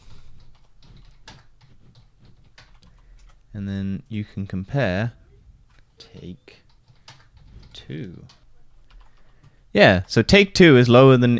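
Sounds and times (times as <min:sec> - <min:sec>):
typing on a computer keyboard while entering a search term into a website: 0:00.4 - 0:03.5, 0:05.7 - 0:10.2
speech: 0:03.6 - 0:05.2, 0:06.1 - 0:06.6, 0:07.9 - 0:08.4, 0:09.7 - 0:11.3.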